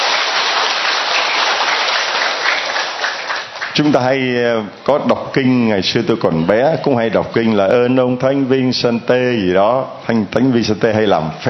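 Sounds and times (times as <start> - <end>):
large crowd applauding: 0.0 - 4.1
speech: 3.8 - 11.4.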